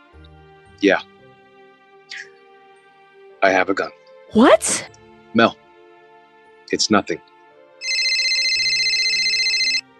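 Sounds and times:
speech: 0.8 - 1.1, 3.4 - 5.6, 6.7 - 7.3
cell phone ringtone ringing: 7.8 - 9.8.

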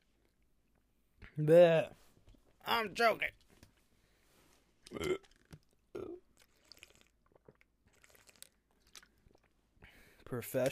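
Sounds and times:
speech: 1.4 - 2.0, 2.6 - 3.4, 4.9 - 5.3, 10.3 - 10.7
throaty burp-like bursts: 4.8 - 8.5
chewing with wet crunchy mouth clicks and smacks: 6.4 - 9.6.

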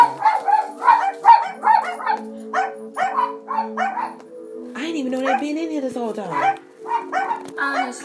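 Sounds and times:
dog barking: 0.0 - 4.3, 5.2 - 5.5, 6.3 - 8.0.

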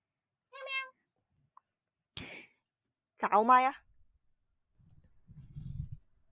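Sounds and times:
cat that has just woken up meowing: 0.6 - 1.0
speech: 3.2 - 3.8.

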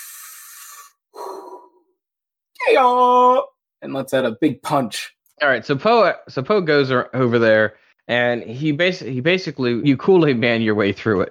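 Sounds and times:
person taking a deep breath: 0.0 - 1.9
speech: 2.7 - 11.2.

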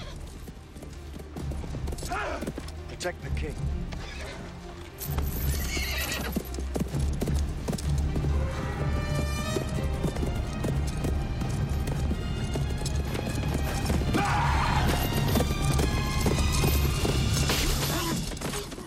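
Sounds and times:
horses neighing and whinnying: 0.0 - 0.4, 3.9 - 6.7, 8.2 - 18.8
horse hooves clip-clopping in a galloping rhythm: 0.0 - 18.8
speech: 2.1 - 4.2.

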